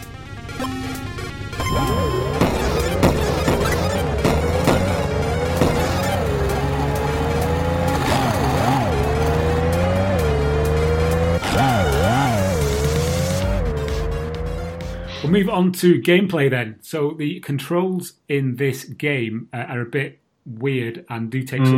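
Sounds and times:
video game car engine revving and whining: 0.0 - 15.4
heavier crunching burst: 2.3 - 9.3
speech: 15.3 - 21.7.

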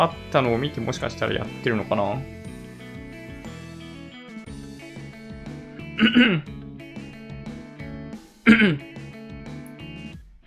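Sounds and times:
speech: 0.0 - 2.4, 6.0 - 6.6, 8.5 - 8.9
throaty coughs: 5.8 - 6.5, 8.4 - 8.9.

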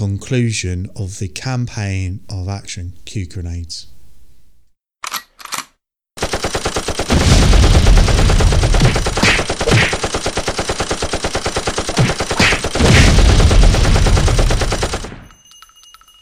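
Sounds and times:
speech: 0.0 - 3.9
machine gun fire: 6.2 - 15.3.

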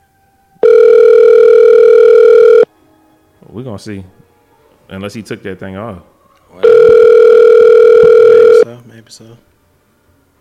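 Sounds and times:
electronic phone call ringing tone: 0.6 - 2.7, 6.6 - 8.7
speech: 3.6 - 4.2, 4.9 - 6.7, 8.7 - 9.5.

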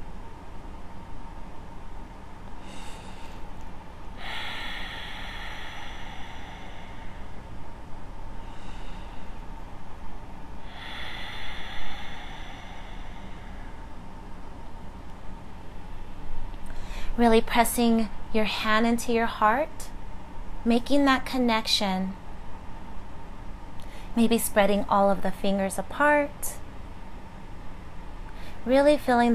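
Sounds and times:
low hum: 0.0 - 29.3
slow deep breathing with long exhalations during a yoga class: 2.5 - 14.7
speech: 17.2 - 19.9, 20.6 - 22.2, 24.2 - 26.6, 28.6 - 29.3.

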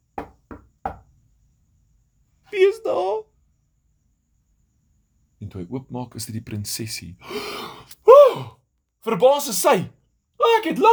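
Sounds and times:
knocking on a wooden door: 0.1 - 1.2
speech: 2.7 - 3.3, 5.5 - 7.8, 8.4 - 10.0, 10.6 - 10.9.

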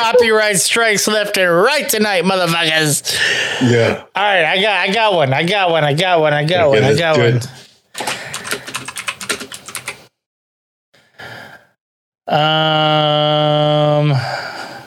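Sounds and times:
speech: 0.0 - 7.7, 12.3 - 14.3
sigh-like vocal groan: 3.6 - 4.1, 12.3 - 14.5
typing on a computer keyboard: 8.0 - 10.1.

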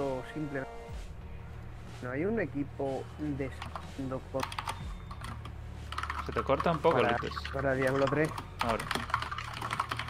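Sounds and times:
speech: 0.3 - 1.1, 2.0 - 4.4, 6.3 - 9.2
computer keyboard typing: 3.6 - 10.0.

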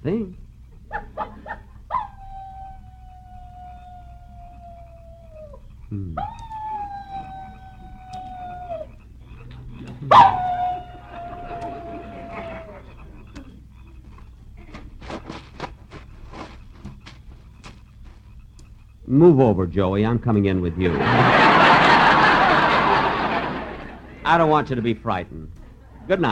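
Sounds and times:
laughter: 0.8 - 1.9, 2.8 - 15.7, 20.5 - 26.3
human voice imitating a coyote howling at a campsite: 1.4 - 14.9
speech: 19.2 - 21.5, 24.3 - 26.3.

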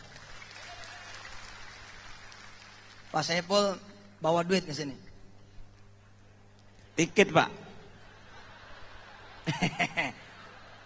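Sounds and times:
audience applauding: 0.0 - 3.5
speech: 3.1 - 5.1, 7.0 - 7.6, 9.5 - 10.2
laughter: 7.6 - 10.8.

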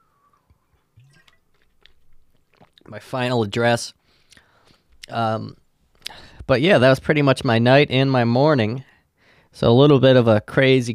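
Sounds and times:
person sipping a hot drink: 0.1 - 2.9
speech: 2.9 - 4.0, 5.1 - 5.6, 6.5 - 8.9, 9.5 - 10.9.

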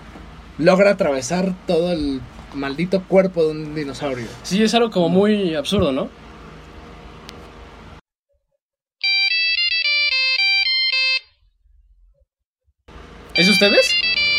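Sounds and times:
speech: 0.6 - 6.2, 13.6 - 14.0
cell phone ringtone electronic melody: 9.0 - 11.4, 13.4 - 14.3.

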